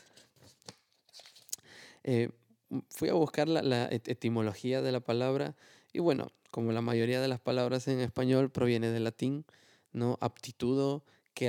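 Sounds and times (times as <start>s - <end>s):
paper notes pages rustling and crinkling: 0.0s - 1.6s
speech: 2.0s - 11.4s.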